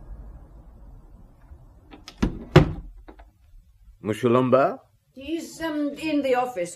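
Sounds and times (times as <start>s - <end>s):
house door thunking against its frame: 2.2s - 3.2s
speech: 4.0s - 6.7s.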